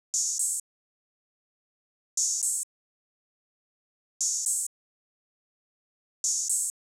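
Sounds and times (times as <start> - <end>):
drum loop with open hi-hat: 0.2 - 0.6, 2.2 - 2.6, 6.3 - 6.7.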